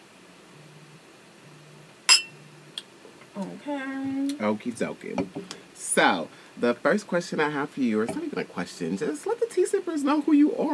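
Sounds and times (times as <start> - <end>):
wine glasses clinking in a toast: 2.1 - 2.4
speech: 3.4 - 10.7.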